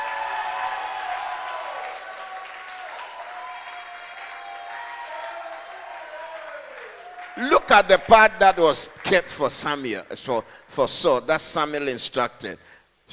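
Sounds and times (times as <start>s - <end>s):
audience clapping: 0.0s - 9.8s
speech: 7.4s - 13.1s.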